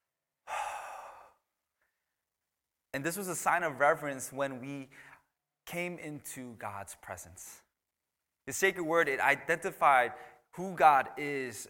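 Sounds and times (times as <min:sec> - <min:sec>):
participants at a youth worship session exhaling: 0:00.5 - 0:01.4
speech: 0:03.0 - 0:05.1, 0:05.7 - 0:07.6, 0:08.5 - 0:11.6.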